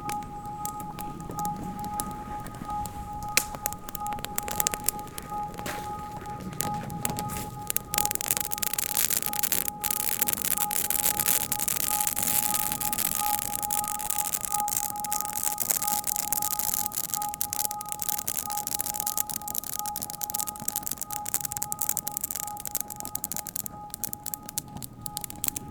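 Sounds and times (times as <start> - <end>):
campfire crackling at a bivouac in a clearing: 0.0 - 25.7.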